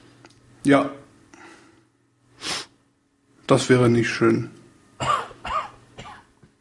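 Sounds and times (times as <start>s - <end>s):
speech: 0.6s - 1.0s, 3.5s - 4.6s
harsh coughs: 5.0s - 6.3s.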